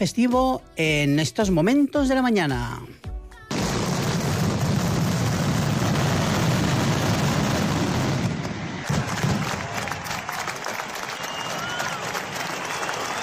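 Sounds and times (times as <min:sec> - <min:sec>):
speech: 0:00.0 - 0:03.0
firecracker pops and booms: 0:03.5 - 0:10.6
large outdoor crowd applauding and cheering: 0:08.7 - 0:13.2.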